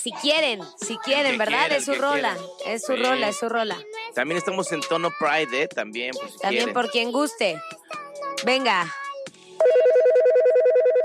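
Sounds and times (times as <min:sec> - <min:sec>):
speech: 0:00.0 - 0:07.8, 0:08.4 - 0:09.0
electronic telephone ringing in a radio studio: 0:09.6 - 0:11.0.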